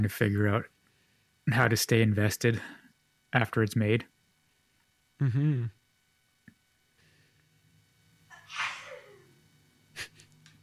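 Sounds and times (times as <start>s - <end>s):
speech: 0.0s - 0.7s, 1.5s - 4.1s, 5.2s - 5.8s
person sneezing: 8.3s - 9.3s.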